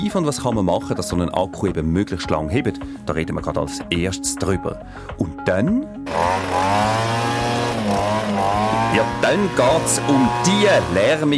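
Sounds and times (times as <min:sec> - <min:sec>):
speech: 0:00.0 - 0:06.9, 0:08.9 - 0:11.3
leaf blower motor running with a high whine: 0:06.0 - 0:11.3.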